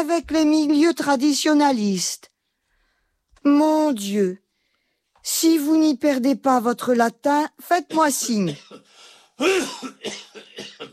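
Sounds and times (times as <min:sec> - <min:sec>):
speech: 0:00.0 - 0:02.3, 0:03.4 - 0:04.4, 0:05.2 - 0:10.9
man coughing in a harsh rattling fit: 0:07.9 - 0:10.9.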